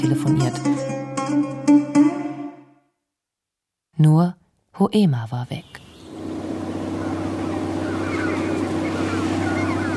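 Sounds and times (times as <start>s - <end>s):
speech: 0.0s - 1.5s, 4.0s - 5.8s
boat motor droning as it flees across the water: 5.8s - 9.9s
rushing water: 6.0s - 9.9s.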